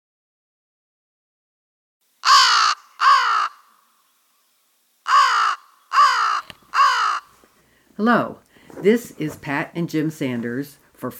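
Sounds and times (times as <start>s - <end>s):
American crow cawing: 2.2s - 4.2s, 5.0s - 7.8s
speech: 8.0s - 11.1s.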